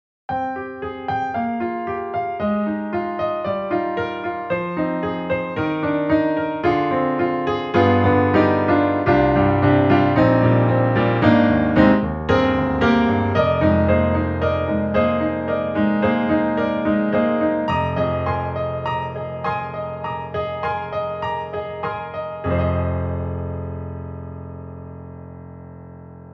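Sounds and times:
studio grand piano with aged strings: 0.3s - 26.3s.

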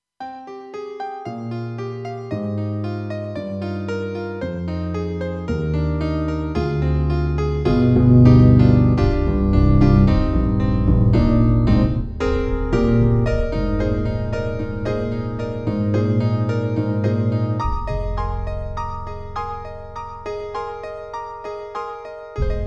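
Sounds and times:
Kawai GMega LX piano: 0.2s - 22.6s
wood bass: 4.4s - 21.7s, 22.4s - 22.6s.

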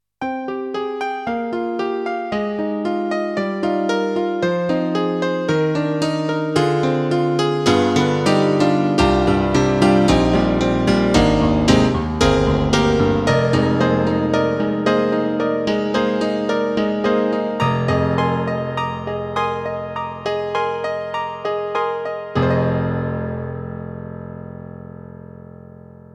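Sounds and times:
KORG N1R M1 piano sound: 0.2s - 26.1s.

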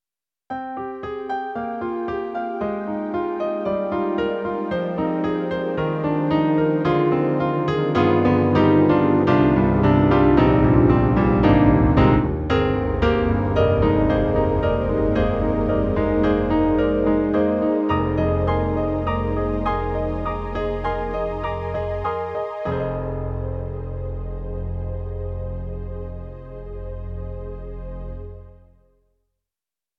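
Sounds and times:
warm pad piano on Roland SonicCell synthesizer: 0.6s - 28.7s.

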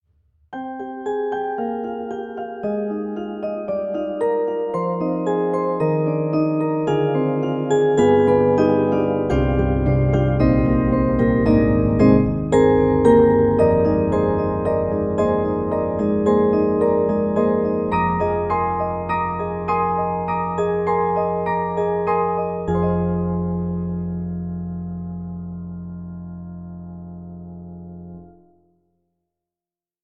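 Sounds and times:
Pianoteq D4 Hybrid piano: 0.5s - 29.0s.

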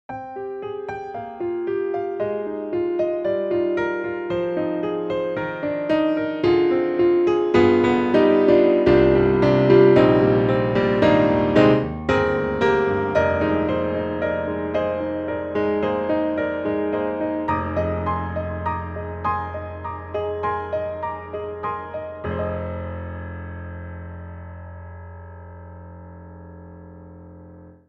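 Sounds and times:
German D grand piano in an intimate club: 0.1s - 27.8s.

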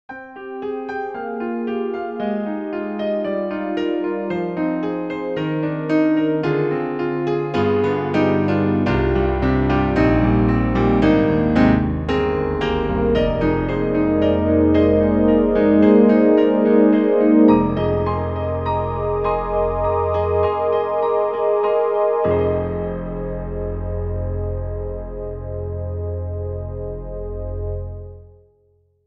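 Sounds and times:
acoustic piano: 0.1s - 28.5s
synth pad: 12.6s - 28.2s.

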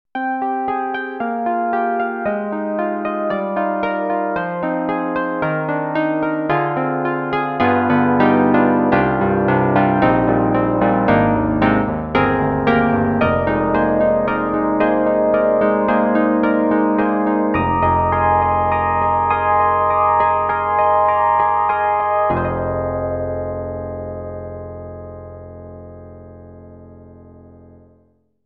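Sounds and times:
60's electric piano on EDIROL SD-90 classical music: 0.2s - 28.0s.

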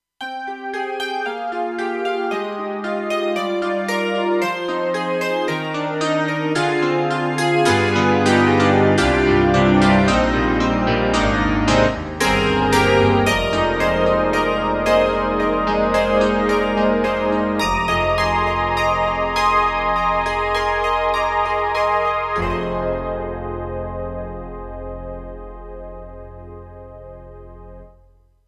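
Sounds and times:
bell piano pad on a synth module: 0.2s - 27.2s.

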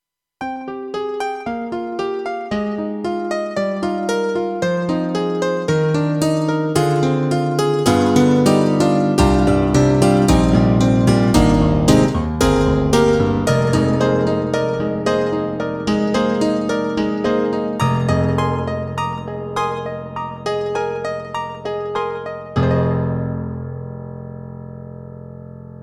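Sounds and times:
KORG M3 XPanded M1 piano with delay: 0.4s - 25.8s.

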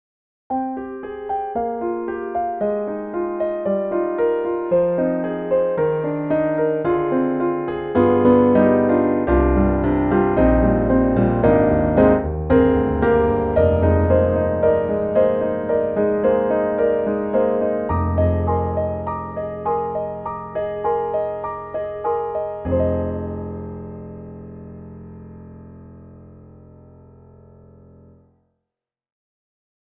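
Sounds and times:
Roland INTEGRA-7 deep grand piano tone: 0.5s - 28.3s.

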